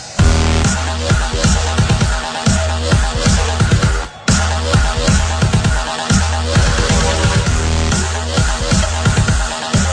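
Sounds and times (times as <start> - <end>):
trance electro ringtone: 0.2 - 9.8.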